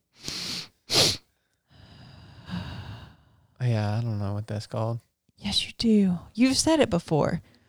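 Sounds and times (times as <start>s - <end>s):
long steady breathy exhale in a breathing exercise: 0.2s - 3.3s
two quick sharp inhales in a breathing exercise: 0.2s - 3.3s
speech: 3.6s - 7.6s.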